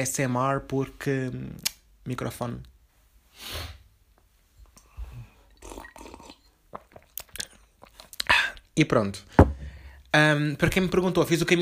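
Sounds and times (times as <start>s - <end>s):
speech: 0.0s - 2.7s, 3.4s - 3.8s, 8.8s - 9.4s, 10.1s - 11.6s
person drinking water with wet sips, swallows and smacks: 4.7s - 8.7s.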